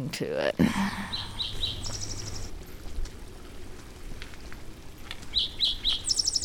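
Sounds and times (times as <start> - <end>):
speech: 0.0 - 1.6
steady outdoor hiss: 0.0 - 6.4
canyon wren singing whistled notes: 1.1 - 2.6, 5.3 - 6.4.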